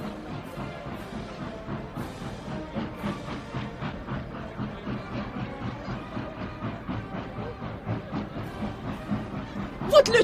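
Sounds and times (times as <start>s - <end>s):
train rumbling: 0.0s - 10.2s
speech: 10.0s - 10.2s.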